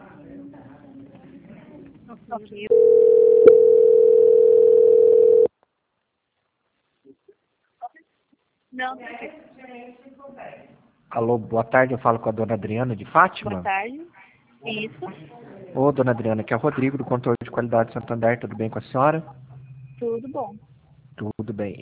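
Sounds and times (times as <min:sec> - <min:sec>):
speech: 0:02.1 - 0:03.3, 0:08.8 - 0:19.4, 0:20.2 - 0:21.8
telephone line tone while a call is transferred: 0:02.7 - 0:05.5.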